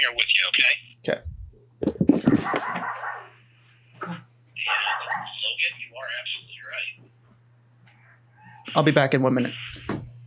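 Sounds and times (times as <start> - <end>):
speech: 0.0 - 2.9, 8.7 - 10.0
dog being let outside barking: 2.4 - 3.3, 4.6 - 5.5
dog short yelp: 4.6 - 5.4.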